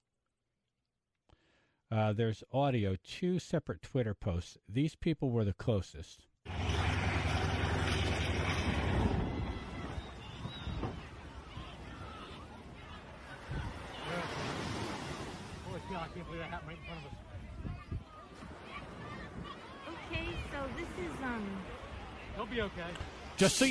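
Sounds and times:
speech: 1.9s - 6.3s, 15.9s - 17.5s, 20.1s - 21.8s, 22.4s - 23.6s
beach surf: 6.5s - 23.6s
gusty wind noise at a beach: 8.0s - 15.7s, 16.8s - 22.4s.

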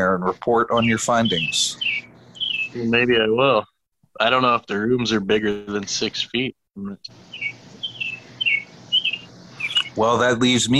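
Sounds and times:
speech: 0.0s - 1.9s, 2.7s - 7.6s, 10.0s - 10.7s
low hum: 0.0s - 10.7s
bird chirping loudly on a patio: 0.3s - 3.4s, 7.0s - 10.0s.

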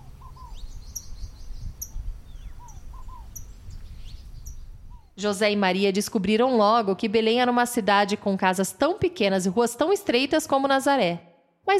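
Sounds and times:
small birds chirping: 0.0s - 5.2s
speech: 5.2s - 11.7s.

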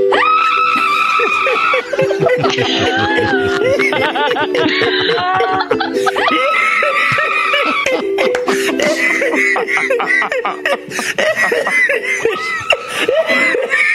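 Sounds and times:
woman screaming in a song: 0.1s - 3.8s, 4.8s - 8.0s
laughter: 0.1s - 13.9s.

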